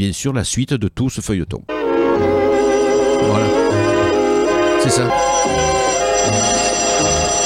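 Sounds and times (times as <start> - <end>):
speech: 0.0 - 3.6, 4.8 - 5.7
telephone ringing with an electric bell: 1.7 - 7.4.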